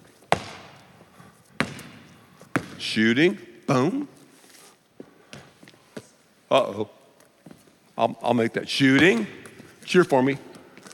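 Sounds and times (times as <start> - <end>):
basketball dribbled on a hard floor: 0.3 - 0.8, 1.6 - 2.8
speech: 2.8 - 4.2, 6.5 - 7.0, 8.0 - 10.5.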